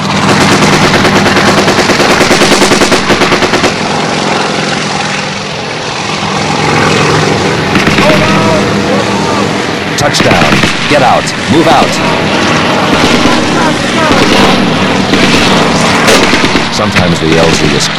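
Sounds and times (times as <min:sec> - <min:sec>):
helicopter door gun firing machine gun bursts at a tree line: 0:00.0 - 0:04.0, 0:10.2 - 0:10.8, 0:12.9 - 0:17.0
helicopter rotor and engine roar: 0:00.0 - 0:17.9
speech: 0:10.2 - 0:12.4, 0:16.8 - 0:17.9.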